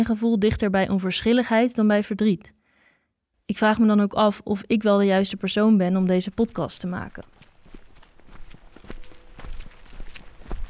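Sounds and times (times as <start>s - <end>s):
speech: 0.0s - 2.6s, 3.5s - 7.5s
footsteps crunching outdoors: 6.8s - 10.6s.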